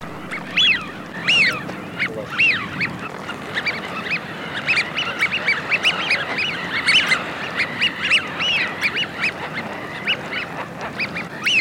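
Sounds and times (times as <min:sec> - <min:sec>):
Eurasian wigeon giving whistled calls: 0:00.0 - 0:11.5.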